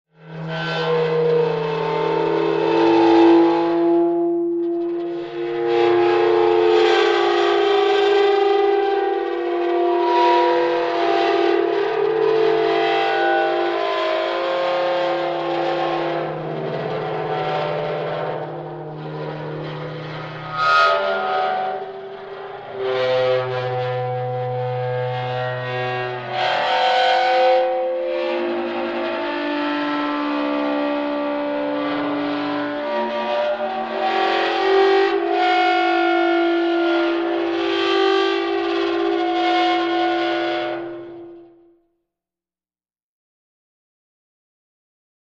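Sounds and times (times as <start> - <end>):
eerie metallic sound of dry ice: 0.2 - 41.7.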